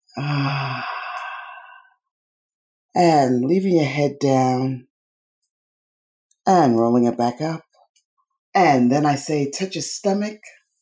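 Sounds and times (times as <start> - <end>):
speech: 0.2 - 0.5, 3.0 - 4.9, 6.4 - 7.6, 8.5 - 10.6
deep breath blown out during a guided movement exercise: 0.2 - 1.9.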